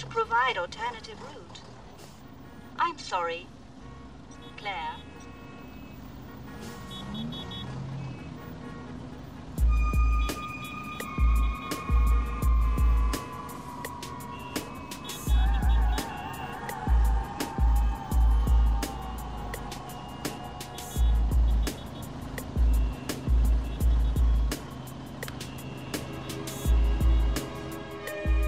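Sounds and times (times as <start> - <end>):
speech: 0.2 - 1.7, 2.8 - 3.6, 4.6 - 5.1
long horn blasts over a traffic jam: 3.8 - 12.6, 20.8 - 24.6, 25.5 - 28.4
steady low engine rumble of cars and trucks in congested traffic: 5.9 - 27.7.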